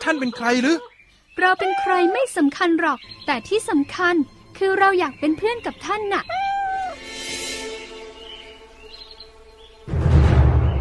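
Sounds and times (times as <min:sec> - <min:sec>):
speech: 0:00.0 - 0:06.4
cat meowing: 0:01.6 - 0:02.3, 0:06.2 - 0:07.0.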